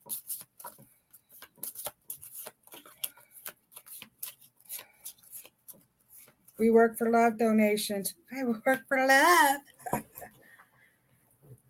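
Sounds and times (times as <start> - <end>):
cards drawn from a deck for a card reading: 0.0 - 6.5
speech: 6.6 - 9.7.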